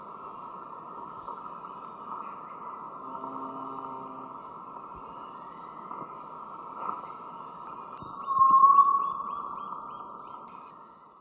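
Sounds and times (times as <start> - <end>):
white-throated tinamou drawn-out whistle in the Eastern Lowlands of South America: 8.2 - 9.2.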